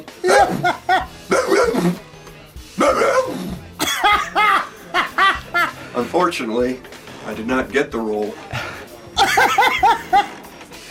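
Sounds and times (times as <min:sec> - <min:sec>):
laughter: 0:00.2 - 0:01.8, 0:03.8 - 0:05.9, 0:08.6 - 0:10.4
man on his knees imitating a barking dog at an acting audition: 0:00.2 - 0:02.0, 0:02.8 - 0:03.4
speech: 0:06.2 - 0:08.5.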